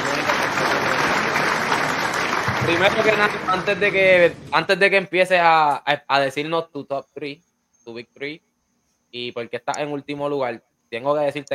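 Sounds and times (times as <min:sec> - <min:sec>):
crowd applauding: 0:00.0 - 0:04.0
speech: 0:02.7 - 0:08.5, 0:09.1 - 0:11.5.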